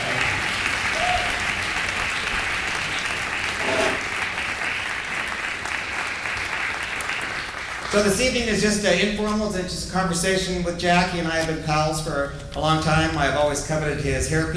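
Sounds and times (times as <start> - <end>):
audience applause: 0.0 - 8.4
speech: 7.9 - 14.5.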